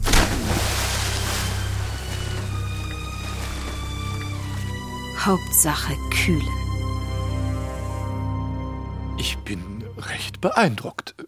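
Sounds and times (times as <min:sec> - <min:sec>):
horse and rider plunging into moat water: 0:00.0 - 0:05.2
water churning and sloshing in a moat: 0:00.0 - 0:08.2
speech: 0:05.2 - 0:06.6, 0:09.2 - 0:11.2.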